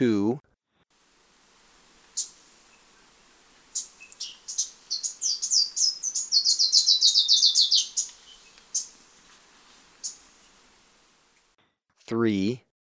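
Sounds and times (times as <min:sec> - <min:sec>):
speech: 0:00.0 - 0:00.5, 0:12.2 - 0:12.7
black-crested warbler song in Ecuador: 0:01.1 - 0:11.0.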